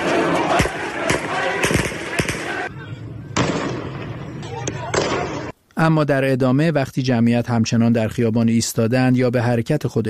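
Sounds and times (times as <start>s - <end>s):
gunshots fired into the air at a protest: 0.0s - 2.7s, 3.4s - 4.2s
dense noisy crowd at a protest: 0.0s - 5.6s
speech: 5.8s - 10.0s.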